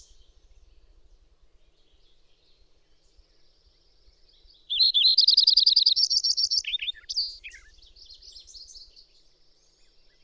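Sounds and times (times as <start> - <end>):
bird singing a fast trill: 4.3 - 10.2.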